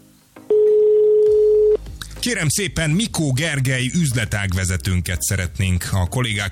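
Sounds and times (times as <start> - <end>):
telephone ringback tone through a handset: 0.5 - 1.8
speech: 2.2 - 6.5.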